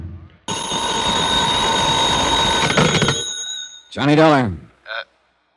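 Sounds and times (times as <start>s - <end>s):
house telephone ringing: 0.5s - 3.9s
speech: 4.0s - 4.6s.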